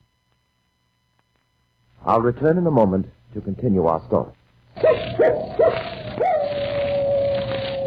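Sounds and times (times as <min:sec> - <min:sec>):
speech: 0:02.0 - 0:04.4
dog yelping and howling: 0:04.8 - 0:07.8.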